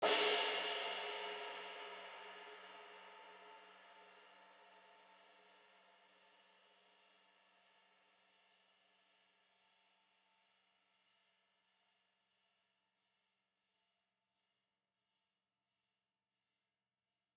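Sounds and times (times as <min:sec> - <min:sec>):
high riveted crash cymbal: 0:00.0 - 0:03.7.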